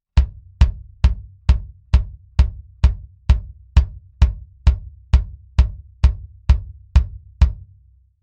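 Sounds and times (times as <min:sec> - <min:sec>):
bass drum recorded with an M201 mic: 0:00.0 - 0:08.0.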